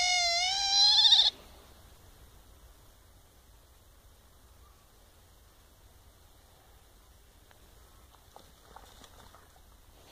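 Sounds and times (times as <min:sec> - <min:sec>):
otter squealing whistle: 0:00.0 - 0:01.3.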